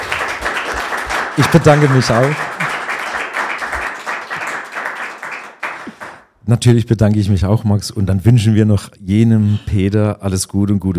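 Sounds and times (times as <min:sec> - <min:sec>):
live audience applauding: 0:00.0 - 0:06.2
speech: 0:01.4 - 0:02.5, 0:06.5 - 0:10.9.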